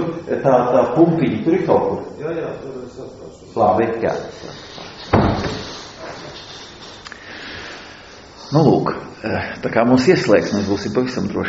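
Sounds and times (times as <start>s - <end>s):
speech: 0.2s - 5.6s, 8.5s - 11.4s
door shutting with a solid thud: 5.1s - 5.7s.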